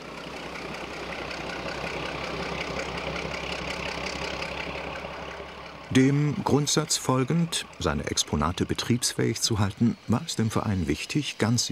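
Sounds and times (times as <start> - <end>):
diesel locomotive push-pull train with railcar running on a museum line: 0.0 - 11.7
speech: 6.0 - 11.7.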